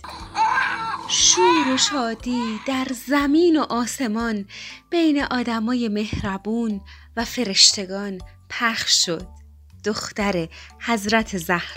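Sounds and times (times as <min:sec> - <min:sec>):
newborn baby girl crying: 0:00.0 - 0:03.0
speech: 0:01.1 - 0:11.7.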